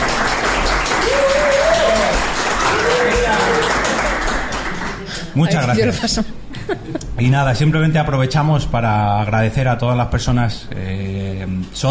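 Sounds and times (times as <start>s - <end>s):
cheering voices: 0.0s - 4.9s
live crowd applauding: 0.0s - 5.5s
speech: 5.3s - 11.8s.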